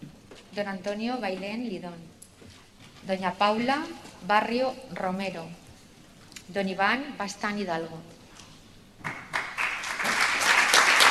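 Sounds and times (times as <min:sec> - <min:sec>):
speech: 0:00.6 - 0:02.2, 0:03.0 - 0:05.6, 0:06.5 - 0:08.2
audience applause: 0:09.0 - 0:11.0.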